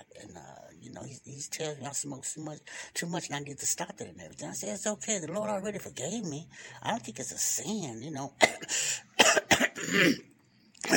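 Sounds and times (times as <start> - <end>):
speech: 1.0 - 10.3
person clearing throat: 8.4 - 10.9.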